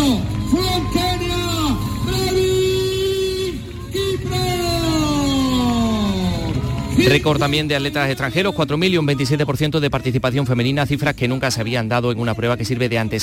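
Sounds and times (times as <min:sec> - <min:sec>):
crowd cheering at a half marathon finish line: 0:00.0 - 0:10.2
speech: 0:07.1 - 0:13.2.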